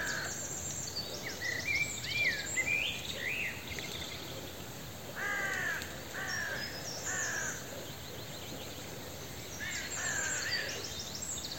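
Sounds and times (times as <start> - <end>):
background hiss: 0.0 - 11.5
Corvus corone carrion crow calling rasping caws: 5.2 - 7.6.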